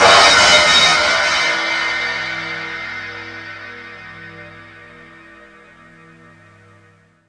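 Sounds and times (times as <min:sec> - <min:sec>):
drums: 0:00.0 - 0:05.1
cymbal: 0:00.0 - 0:07.2.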